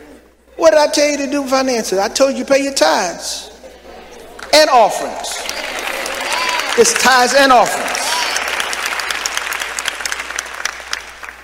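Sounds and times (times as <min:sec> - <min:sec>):
speech: 0:00.6 - 0:03.5, 0:04.5 - 0:05.6, 0:06.8 - 0:08.0
small group of people clapping in a room: 0:04.3 - 0:04.6, 0:05.2 - 0:11.4.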